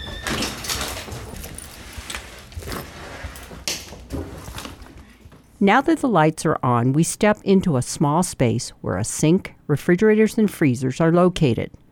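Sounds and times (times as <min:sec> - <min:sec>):
bakery back door rattling and scraping: 0:00.0 - 0:04.8
faint hum: 0:00.0 - 0:11.9
speech: 0:05.6 - 0:11.8.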